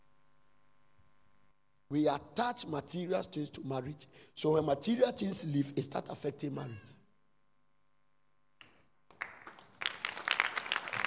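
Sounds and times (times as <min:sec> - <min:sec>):
speech: 0:01.9 - 0:07.0
audience clapping: 0:08.6 - 0:11.0.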